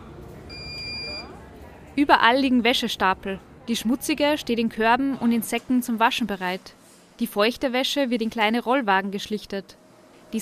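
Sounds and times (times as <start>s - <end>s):
washing machine end-of-cycle beep in a large laundry: 0.5s - 1.3s
speech: 2.0s - 10.4s.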